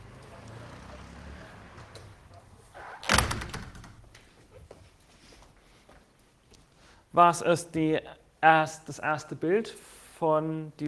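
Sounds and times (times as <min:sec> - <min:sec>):
door shutting with a thud and rattling: 0:02.9 - 0:04.2
speech: 0:07.2 - 0:10.8.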